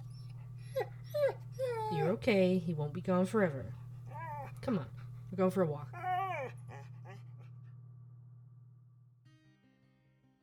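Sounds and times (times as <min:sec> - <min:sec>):
dogs panting: 0:00.0 - 0:02.6, 0:03.4 - 0:07.5
dogs whimpering: 0:00.0 - 0:02.6, 0:04.0 - 0:05.0, 0:05.9 - 0:07.5
steady low hum: 0:00.0 - 0:09.3
speech: 0:02.1 - 0:03.8, 0:04.7 - 0:06.1.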